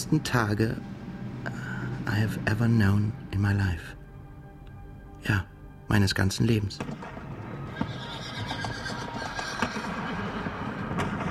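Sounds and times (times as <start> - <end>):
speech: 0.0 - 0.9, 2.1 - 4.0, 5.2 - 7.2
horse hooves clip-clopping: 6.8 - 11.2
horse whinnying: 7.6 - 11.0.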